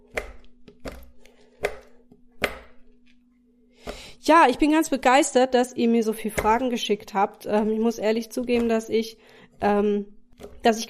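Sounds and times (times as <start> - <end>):
chocolate chopped with a large knife on a board: 0.0 - 2.9, 6.2 - 6.8, 7.4 - 8.9, 10.3 - 10.7
speech: 4.2 - 10.8.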